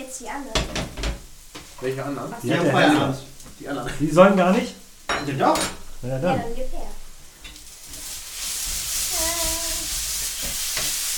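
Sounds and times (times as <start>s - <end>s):
falafel crumble sizzling in a frying pan: 0.0s - 11.1s
speech: 0.1s - 1.0s, 1.8s - 7.0s
stirring scrape and clatter in a pan: 7.4s - 11.1s.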